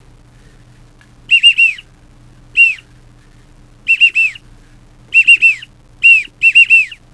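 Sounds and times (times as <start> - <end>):
widgeon duck whistling: 1.3 - 1.9, 2.6 - 2.9, 3.9 - 4.4, 5.1 - 7.0.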